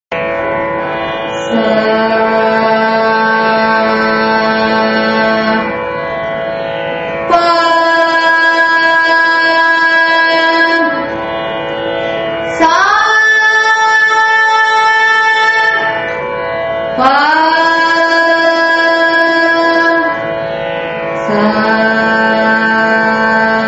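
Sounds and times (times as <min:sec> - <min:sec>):
carnatic music: 0:00.0 - 0:23.6.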